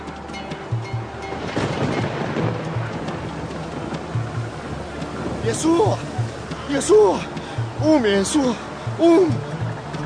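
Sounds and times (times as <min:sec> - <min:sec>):
crashing waves in a storm at sea: 0:00.0 - 0:10.0
heavy rain in a storm at sea: 0:00.0 - 0:10.0
wind in a storm at sea: 0:00.0 - 0:10.0
low rumbles of thunder: 0:00.7 - 0:08.0
speech: 0:05.5 - 0:09.5.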